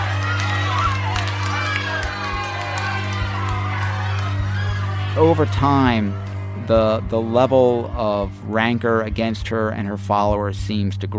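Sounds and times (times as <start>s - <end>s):
hostile crowd heckling and shouting: 0.0s - 9.1s
low hum: 0.0s - 10.1s
speech: 5.2s - 11.1s.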